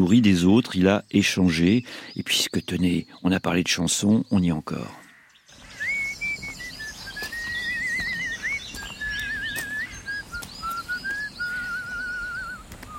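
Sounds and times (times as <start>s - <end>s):
speech: 0.0s - 5.0s
person whistling a melody: 5.8s - 12.9s.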